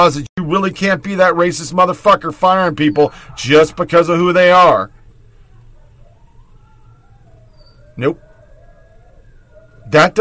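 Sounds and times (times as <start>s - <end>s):
speech: 0.0s - 5.0s, 8.0s - 8.2s, 9.9s - 10.2s
low steady hum: 0.0s - 10.2s
husky barking at a dog in the yard: 5.4s - 10.1s.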